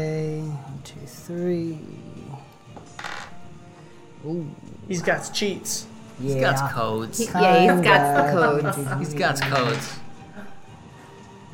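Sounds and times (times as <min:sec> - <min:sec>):
speech: 0:01.3 - 0:01.9, 0:04.2 - 0:10.0
laughter: 0:07.2 - 0:10.6
many dice rolling on a table: 0:09.4 - 0:10.0.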